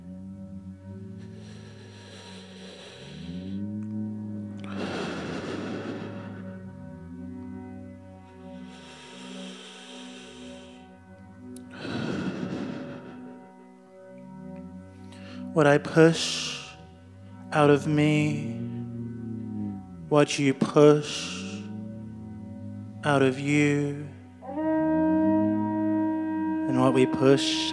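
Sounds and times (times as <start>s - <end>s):
slow deep breathing: 0.0s - 15.6s, 16.5s - 17.6s, 18.4s - 20.1s, 20.7s - 24.4s
sustained droning musical tone: 0.0s - 27.7s
speech: 15.6s - 16.5s, 17.5s - 18.6s, 20.1s - 21.4s, 23.1s - 24.2s, 26.8s - 27.7s.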